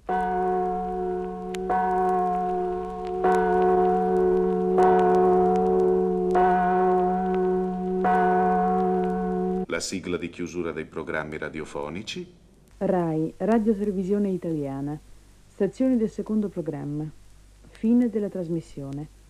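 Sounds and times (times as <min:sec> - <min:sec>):
evening church bell tolling: 0:00.0 - 0:09.7
speech: 0:09.8 - 0:17.2, 0:17.8 - 0:19.2.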